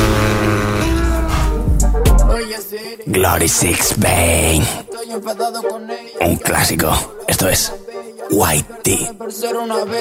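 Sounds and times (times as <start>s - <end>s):
car engine revving: 0.0s - 1.8s
speech: 3.0s - 9.9s.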